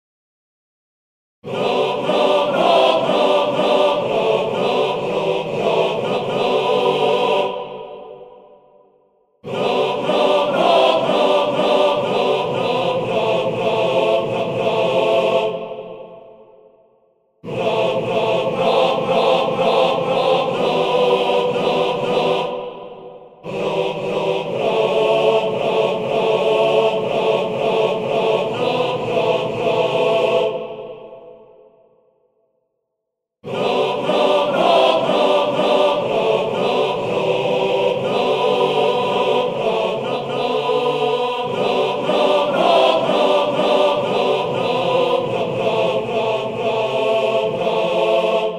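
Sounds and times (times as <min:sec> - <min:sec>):
choir singing: 0:01.4 - 0:32.2, 0:33.4 - 0:48.5.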